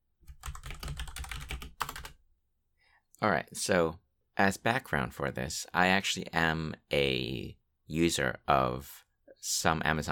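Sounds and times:
typing on a clacky computer keyboard: 0:00.3 - 0:02.1
speech: 0:03.2 - 0:10.1.

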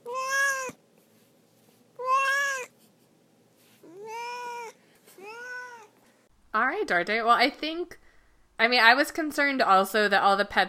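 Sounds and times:
cat meowing: 0:00.0 - 0:00.8, 0:02.0 - 0:02.7, 0:03.8 - 0:05.9
speech: 0:06.6 - 0:08.0, 0:08.6 - 0:10.6.

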